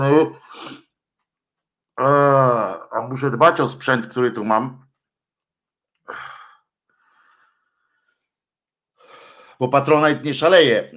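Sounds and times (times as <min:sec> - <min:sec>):
speech: 0:00.0 - 0:00.8, 0:02.0 - 0:02.3, 0:03.0 - 0:04.8, 0:09.6 - 0:10.9
short breathy intake: 0:06.0 - 0:07.8.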